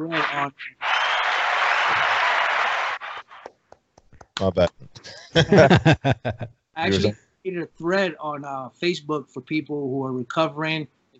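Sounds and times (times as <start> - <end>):
speech: 0.0 - 1.1, 4.4 - 11.0
audience applause: 0.0 - 3.5
scattered claps: 0.8 - 5.1
laughter: 5.0 - 7.1.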